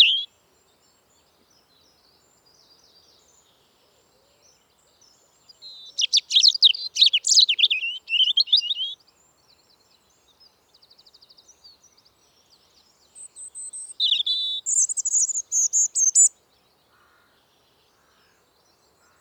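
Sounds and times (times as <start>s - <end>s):
European robin Erithacus rubecula singing: 0.0s - 0.3s, 4.9s - 9.1s, 9.9s - 16.4s.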